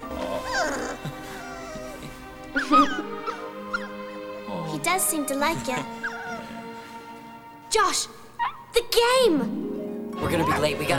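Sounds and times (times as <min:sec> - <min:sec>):
puppy whimpering and whining: 0:00.2 - 0:04.0, 0:05.6 - 0:06.6, 0:08.4 - 0:08.7, 0:10.3 - 0:10.8
puppy yelping: 0:00.4 - 0:04.0, 0:05.8 - 0:06.6, 0:08.4 - 0:08.8, 0:10.3 - 0:10.7
speech: 0:05.0 - 0:06.1, 0:07.8 - 0:08.2, 0:08.8 - 0:09.6, 0:10.2 - 0:10.9.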